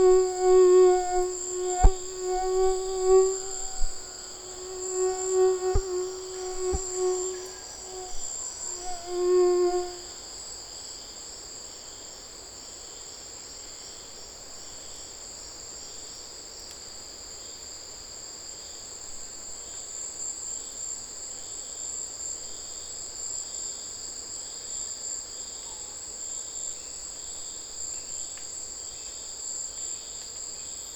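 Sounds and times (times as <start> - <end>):
tropical mosquito whining: 0.0 - 10.2
steady high-pitched chorus of insects: 0.0 - 30.9.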